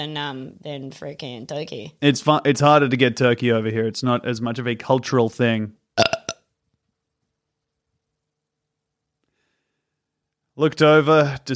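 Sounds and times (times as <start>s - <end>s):
speech: 0.0s - 6.1s, 10.6s - 11.5s
loud burps into the microphone: 6.0s - 6.5s.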